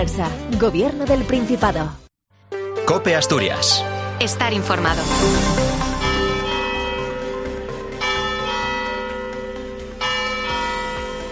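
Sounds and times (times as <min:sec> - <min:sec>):
speech: 0:00.0 - 0:02.0, 0:02.9 - 0:05.9
church bells ringing: 0:05.2 - 0:11.3.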